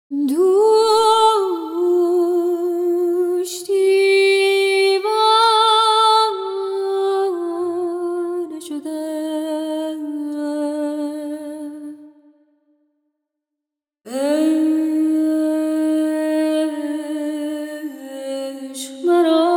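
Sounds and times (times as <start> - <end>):
woman singing: 0.1 - 12.4, 14.1 - 19.5.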